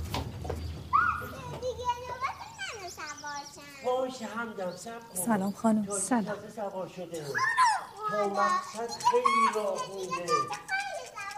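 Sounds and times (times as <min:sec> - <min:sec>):
children shouting and squealing playfully while getting rides: 0:00.9 - 0:04.4, 0:07.2 - 0:11.3
children's chatter during play: 0:00.9 - 0:11.3
speech: 0:03.9 - 0:10.7.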